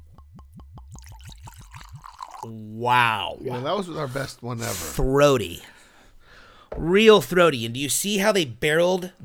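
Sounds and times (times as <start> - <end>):
whiskey glugging as poured from bottle: 0.0 - 5.2, 6.1 - 7.6
whiskey splashing: 0.0 - 7.6
speech: 2.4 - 5.8, 6.7 - 9.2.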